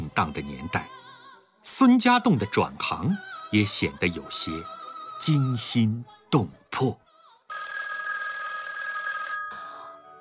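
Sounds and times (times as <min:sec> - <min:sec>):
speech: 0:00.2 - 0:01.0, 0:01.6 - 0:07.7
telephone bell ringing: 0:07.5 - 0:10.1.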